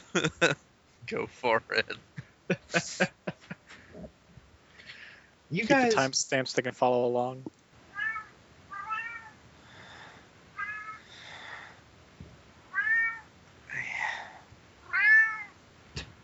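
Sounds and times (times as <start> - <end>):
laughter: 0.0 - 0.6, 2.5 - 3.8
speech: 0.1 - 3.2, 5.5 - 7.6
cat meowing: 7.9 - 9.4, 10.6 - 11.1, 12.7 - 13.3, 14.8 - 15.6.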